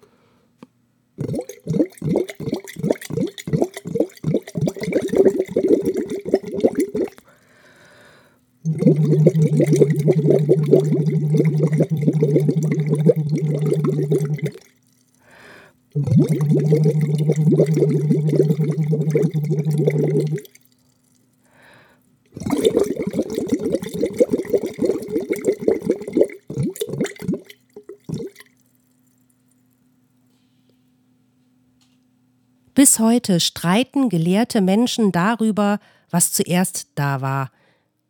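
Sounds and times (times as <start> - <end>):
person humming through a silicone tube into water, bubbling drone: 1.2 - 7.3, 8.6 - 14.9, 16.0 - 20.8, 22.3 - 29.2
speech: 33.0 - 37.6.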